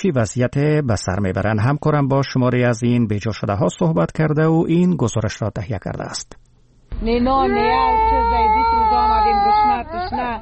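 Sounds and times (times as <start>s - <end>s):
speech: 0.0s - 6.4s, 7.0s - 10.4s
young child crying loudly from hunger: 7.4s - 10.4s.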